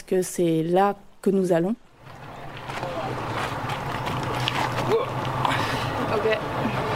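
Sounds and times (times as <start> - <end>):
wind at a boat dock: 0.0 - 6.9
speech: 0.1 - 1.9
boat engine rumble at a dock: 1.9 - 6.9
water noise at a boat dock: 2.1 - 6.9.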